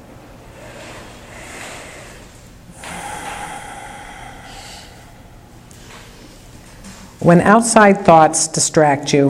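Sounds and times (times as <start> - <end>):
slow deep breathing in and out: 0.2 - 6.9
speech: 7.2 - 9.2.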